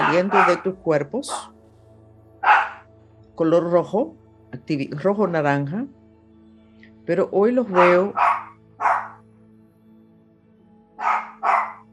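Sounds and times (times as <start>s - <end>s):
pet dog barking: 0.0s - 1.5s, 2.4s - 2.9s, 7.7s - 9.2s, 11.0s - 11.9s
speech: 0.1s - 1.6s, 3.4s - 6.0s, 7.1s - 9.0s.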